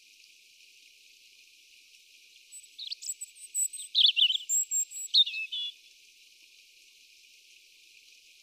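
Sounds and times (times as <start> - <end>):
European robin (Erithacus rubecula) song of high chirps and warbled bursts: 2.5 - 5.8.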